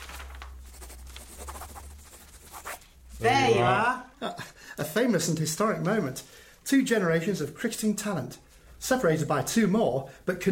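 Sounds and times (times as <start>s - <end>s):
pen scratching across paper signing an autograph: 0.6s - 2.8s
speech: 3.2s - 10.5s.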